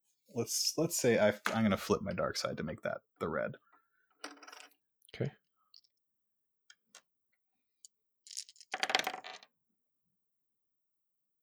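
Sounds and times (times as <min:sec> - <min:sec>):
speech: 0:00.4 - 0:03.7, 0:05.2 - 0:05.4
dice rolling on a tabletop: 0:04.2 - 0:04.8, 0:08.3 - 0:09.5.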